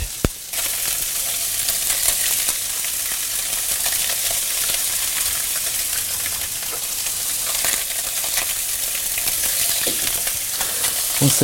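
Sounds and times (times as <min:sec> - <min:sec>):
perch fillets frying in a hot pan: 0:00.0 - 0:11.4
speech: 0:11.3 - 0:11.4.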